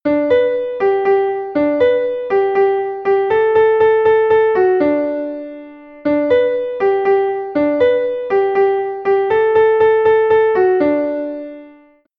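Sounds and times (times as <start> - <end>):
slowed piano refrain: 0.1 - 12.1.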